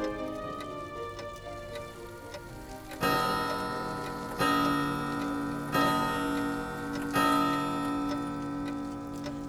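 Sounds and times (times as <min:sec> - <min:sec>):
tall grandfather clock ticking: 0:00.0 - 0:09.4.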